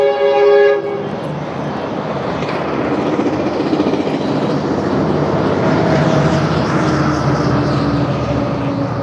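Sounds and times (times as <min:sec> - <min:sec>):
commuter train horn blast: 0:00.0 - 0:01.2
commuter train rumbling past: 0:00.0 - 0:09.0.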